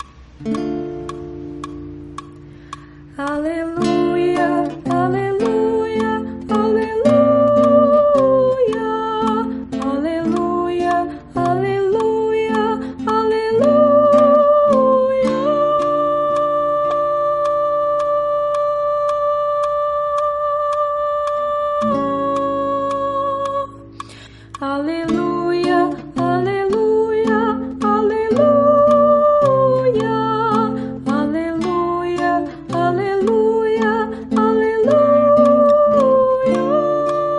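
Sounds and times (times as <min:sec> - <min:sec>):
soprano singing an Aleluia: 0:03.1 - 0:37.3.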